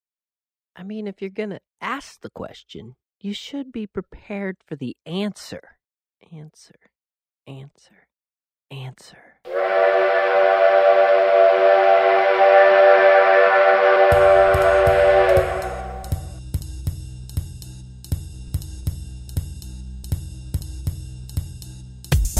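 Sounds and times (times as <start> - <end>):
speech: 0.8 - 6.9, 7.5 - 8.1, 8.7 - 11.8
loud steady whistle blowing: 9.5 - 16.4.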